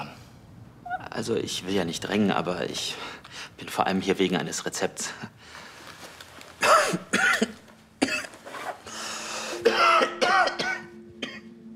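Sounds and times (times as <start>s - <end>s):
speech: 1.2s - 5.6s
raspy breathing and throat noise: 2.9s - 3.6s, 5.1s - 6.2s, 8.8s - 9.7s
harsh wet coughs: 6.6s - 8.4s, 9.6s - 11.4s.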